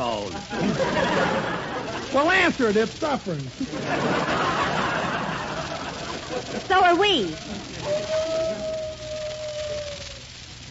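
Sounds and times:
low hiss: 0:00.0 - 0:10.6
laughter: 0:00.3 - 0:02.7, 0:03.5 - 0:09.0
speech: 0:02.1 - 0:04.5, 0:06.3 - 0:08.8
wolf-like howl: 0:07.8 - 0:10.3.

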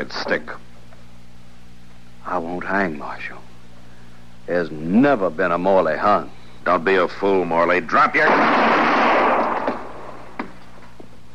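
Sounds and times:
speech: 0:00.0 - 0:00.6, 0:02.3 - 0:03.5, 0:04.5 - 0:08.8
gunshots in a Western radio drama: 0:08.1 - 0:10.2.

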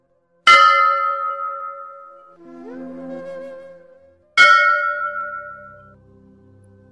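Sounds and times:
soft tonal hum: 0:00.0 - 0:06.9
temple bell ringing during aarti: 0:00.5 - 0:02.4, 0:04.4 - 0:06.0.

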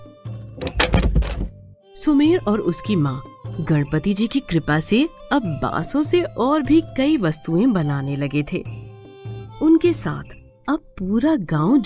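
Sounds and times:
clattering rattle: 0:00.6 - 0:01.6
door shutting with a heavy thud: 0:00.6 - 0:01.6
speech: 0:02.0 - 0:08.8, 0:09.8 - 0:11.8.

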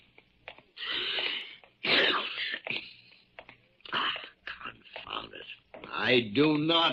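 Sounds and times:
man sneezing: 0:01.8 - 0:02.6
speech: 0:06.1 - 0:06.9.

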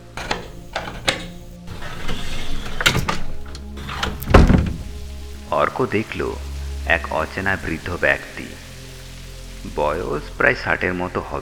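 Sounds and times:
door being opened slowly: 0:00.0 - 0:05.4
speech: 0:05.6 - 0:08.6, 0:09.7 - 0:11.4.

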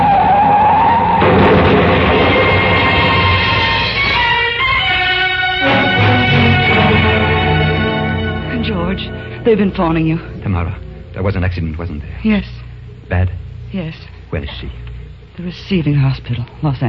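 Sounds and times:
car tires and brakes squealing in a skid on a curve: 0:00.0 - 0:04.2
car engine roaring: 0:00.0 - 0:13.7
speech: 0:09.5 - 0:16.8.

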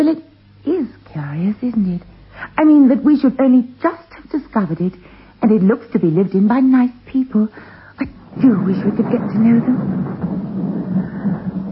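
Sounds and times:
speech: 0:01.3 - 0:10.2
deep rumble of thunder from a storm: 0:08.0 - 0:11.7.

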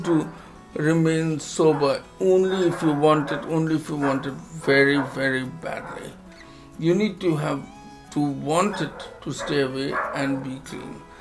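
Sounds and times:
speech: 0:00.0 - 0:06.2, 0:06.8 - 0:11.1
dog barking in the background: 0:01.6 - 0:06.2, 0:08.6 - 0:10.6.

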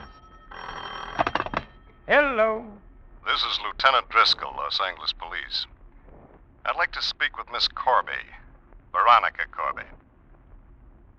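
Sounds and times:
telephone bell ringing: 0:00.0 - 0:02.2
speech: 0:02.1 - 0:05.7, 0:06.6 - 0:10.0.

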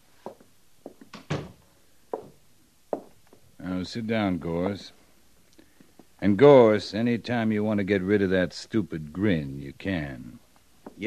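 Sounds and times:
door swinging shut with a solid thunk: 0:01.2 - 0:01.6
speech: 0:03.8 - 0:05.0, 0:06.2 - 0:10.4.

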